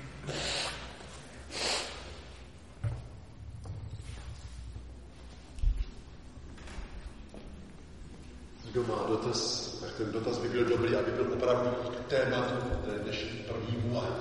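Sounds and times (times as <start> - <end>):
person blowing nose: 0.2 - 2.4
speech: 8.8 - 14.1.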